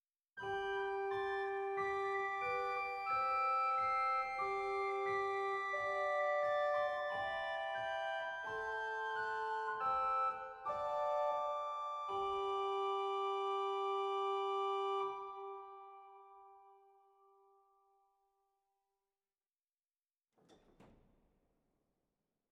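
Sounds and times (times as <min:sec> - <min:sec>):
Woudfluit 2 organ stop on the Bovenpositief in Zwolle: 0:00.4 - 0:16.6.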